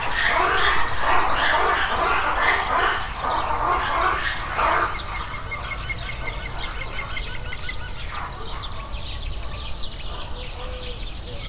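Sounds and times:
green woodpecker calling at a zoo: 0:00.0 - 0:08.4
ruffed lemurs vocalizing at a zoo: 0:00.0 - 0:09.2.

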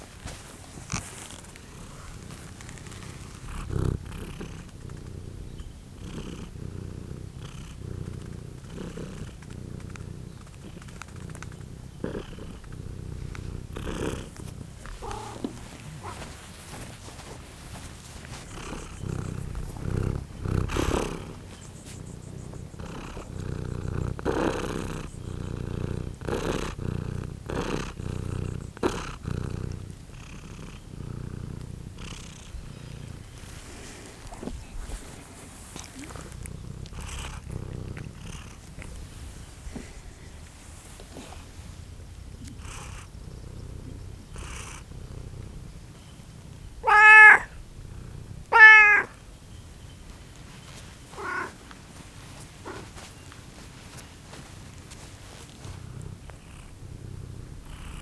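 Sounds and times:
cat purring in a farmyard: 0:00.0 - 0:58.0
cat meowing in a farmyard: 0:14.9 - 0:16.2, 0:46.8 - 0:47.6, 0:48.4 - 0:49.2, 0:51.2 - 0:51.6.

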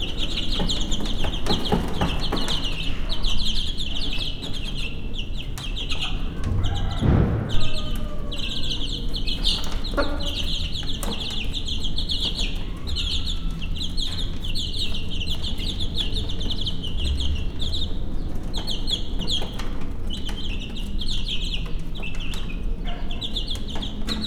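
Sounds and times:
one-week-old chicks in Hortobágy National Park: 0:00.0 - 0:24.2
steppe wind in Hortobágy National Park: 0:00.0 - 0:24.2
broody yellow-feathered Hungarian hen in Hortobágy National Park: 0:06.0 - 0:09.0.

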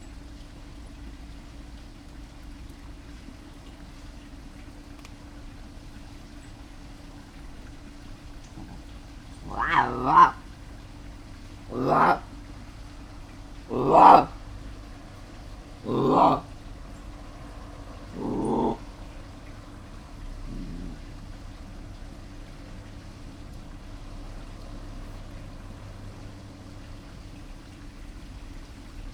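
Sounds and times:
jungle cat calling at night in a zoo: 0:07.5 - 0:21.8.

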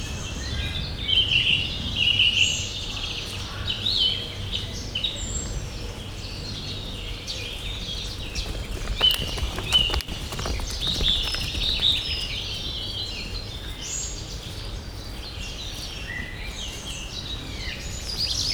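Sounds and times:
loud birds in a zoo: 0:00.0 - 0:18.5
quiet running steps in a zoo: 0:07.3 - 0:15.8
llama in a zoo: 0:07.7 - 0:13.8.

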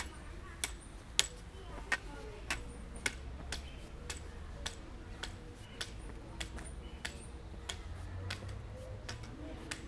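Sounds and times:
white cane moving left to right at Győr zoo: 0:00.0 - 0:09.7.

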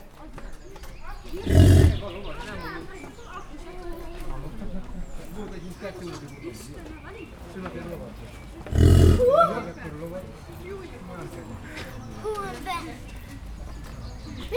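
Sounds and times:
American bison at Pécs zoo: 0:01.2 - 0:02.6, 0:08.6 - 0:09.5.

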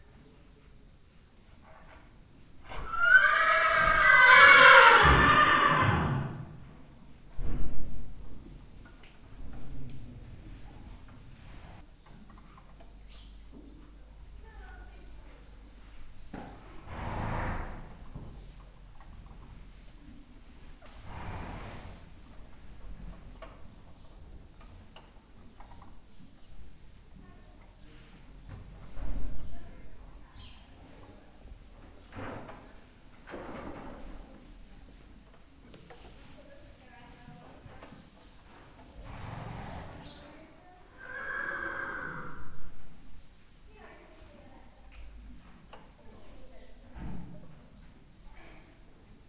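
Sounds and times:
horse neighing in Hortobágy National Park: 0:02.7 - 0:06.6, 0:40.9 - 0:42.7
horse snorting in Hortobágy National Park: 0:02.7 - 0:06.6, 0:16.8 - 0:18.1, 0:20.9 - 0:22.2, 0:39.0 - 0:40.2, 0:40.9 - 0:42.6.

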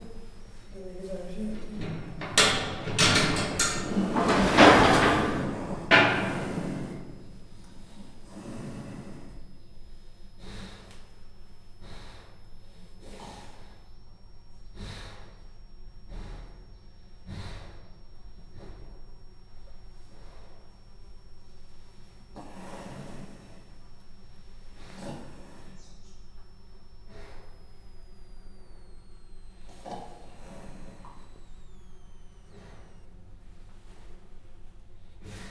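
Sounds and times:
quiet Persian leopard sounds in Miskolc zoo: 0:00.0 - 0:35.4
grating opening: 0:01.2 - 0:07.5.

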